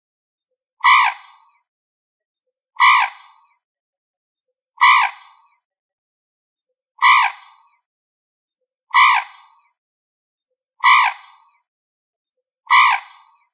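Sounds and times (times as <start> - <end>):
rail of the family Rallidae giving harsh nasal squawks: 0.8 - 1.2, 2.8 - 3.2, 4.8 - 5.2, 7.0 - 7.4, 9.0 - 9.3, 10.8 - 11.2, 12.7 - 13.2.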